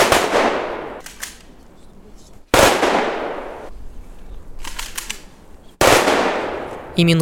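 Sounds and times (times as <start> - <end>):
rolling echo of rifle volleys: 0.0 - 1.4, 2.6 - 3.7, 5.1 - 7.0
rifle volleys of a funeral salute outdoors: 0.1 - 1.6, 4.6 - 5.4
speech: 7.0 - 7.2.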